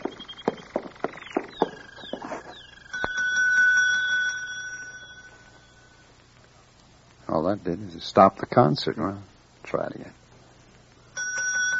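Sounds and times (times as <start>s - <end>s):
desk bell being struck: 2.9s - 6.0s, 11.2s - 11.7s
speech: 7.3s - 10.2s.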